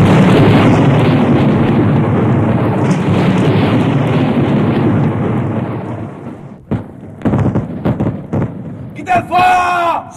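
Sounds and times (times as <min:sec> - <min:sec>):
ammunition caisson exploding inside a fort enclosure during a battle: 0:00.0 - 0:10.0.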